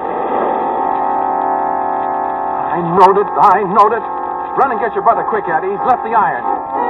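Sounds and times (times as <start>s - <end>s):
runaway train roaring past on the rails at about 50 miles an hour: 0.0s - 2.6s
speech: 2.8s - 6.8s.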